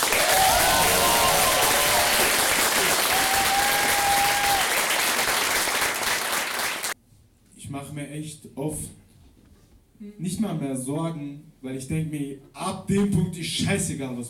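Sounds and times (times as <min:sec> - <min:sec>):
large audience applauding: 0:00.0 - 0:07.0
faint whistles or cheers from an audience: 0:00.1 - 0:04.8
speech: 0:08.1 - 0:09.0, 0:10.0 - 0:14.2.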